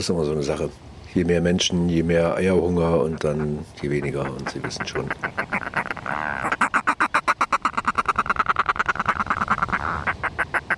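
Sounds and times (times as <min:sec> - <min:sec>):
speech: 0:00.0 - 0:05.6
northern fulmar giving a loud rapid cackling call: 0:02.9 - 0:10.7.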